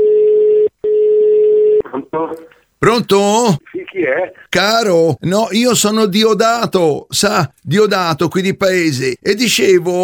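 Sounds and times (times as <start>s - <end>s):
steady low telephone line tone: 0.0s - 1.9s
speech: 2.1s - 10.0s.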